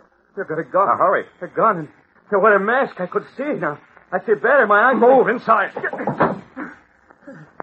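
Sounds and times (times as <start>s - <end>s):
voiced sounds: 0.3s - 7.4s
speech: 0.4s - 6.2s
door shutting: 5.8s - 6.5s.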